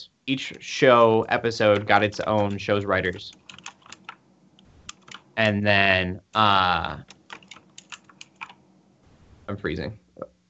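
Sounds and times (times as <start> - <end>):
speech: 0.0 - 3.4, 5.4 - 7.1, 9.5 - 10.3
rapid computer keyboard typing: 1.6 - 5.4, 7.0 - 8.7.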